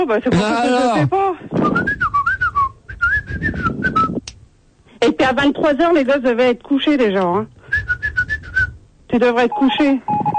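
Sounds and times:
speech: 0.0s - 2.1s, 5.0s - 7.6s, 9.1s - 10.3s
person whistling a wavering, breathy tune: 1.6s - 4.2s, 7.7s - 8.8s.

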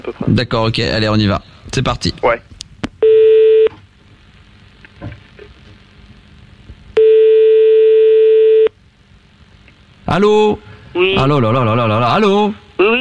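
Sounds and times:
speech: 0.0s - 2.5s, 10.1s - 12.9s
telephone ringback tone while a call waits to be answered: 7.0s - 8.7s.

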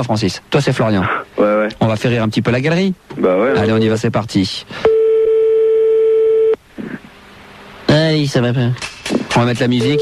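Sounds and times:
speech: 0.0s - 4.9s, 8.1s - 10.0s
telephone line tone while a call is being dialed: 4.8s - 6.6s, 9.8s - 10.0s.

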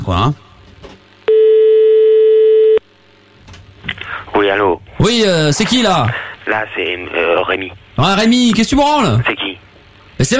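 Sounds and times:
speech: 0.1s - 0.4s, 4.5s - 9.5s, 10.2s - 10.3s
telephone line tone while placing a call: 1.3s - 2.8s.

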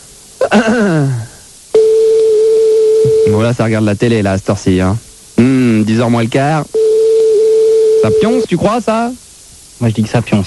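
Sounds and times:
speech: 0.5s - 1.3s, 3.3s - 6.8s, 8.0s - 9.2s, 9.8s - 10.4s
steady electronic phone tone: 1.8s - 3.4s, 6.7s - 8.5s.

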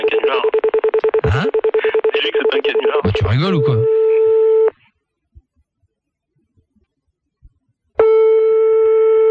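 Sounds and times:
telephone line tone after pressing redial: 0.0s - 4.7s, 8.0s - 9.2s
speech: 2.5s - 4.0s.

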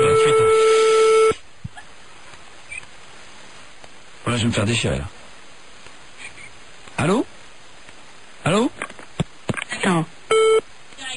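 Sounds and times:
telephone beep after a call is hung up: 0.0s - 1.4s, 10.3s - 10.6s
speech: 4.4s - 5.2s, 7.0s - 7.3s.

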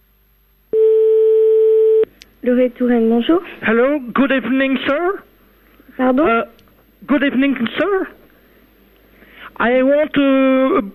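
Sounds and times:
telephone ringing tone over the line: 0.8s - 2.1s
speech: 2.4s - 5.3s, 6.0s - 8.2s, 9.6s - 10.9s.

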